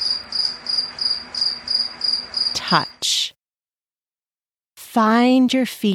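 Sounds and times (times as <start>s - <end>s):
cricket chirping: 0.0s - 2.9s
speech: 2.7s - 3.2s, 5.0s - 5.9s.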